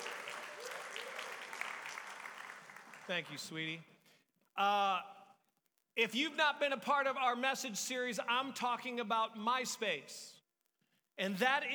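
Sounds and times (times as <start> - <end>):
audience applause at a church service: 0.0 - 3.6
speech: 3.1 - 3.9, 4.6 - 5.2, 6.0 - 10.4, 11.2 - 11.7.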